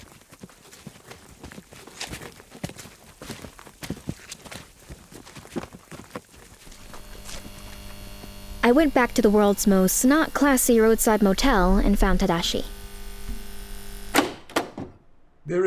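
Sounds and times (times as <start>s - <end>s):
soft footsteps on a walk back to parked vehicles: 0.0s - 8.6s
speech: 8.7s - 12.7s.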